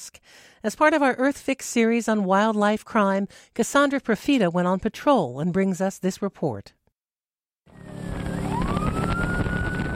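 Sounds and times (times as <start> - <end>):
speech: 0.0 - 6.8
police boat engine roar speeding along the Columbia River: 7.7 - 9.9
police boat siren wailing: 7.7 - 9.9.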